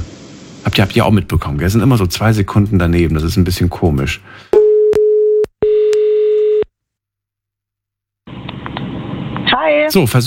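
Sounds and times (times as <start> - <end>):
speech: 0.7 - 4.6, 9.9 - 10.2
telephone ringing tone while calling someone back: 4.6 - 6.7.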